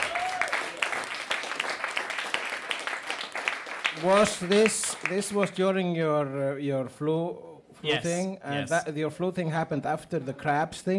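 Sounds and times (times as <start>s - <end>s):
audience applause: 0.0s - 5.6s
speech: 4.0s - 10.9s.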